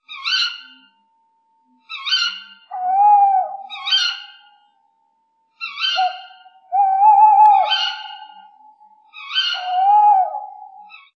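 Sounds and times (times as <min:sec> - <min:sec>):
tawny owl: 0:00.0 - 0:00.9, 0:01.9 - 0:04.6, 0:05.6 - 0:11.1.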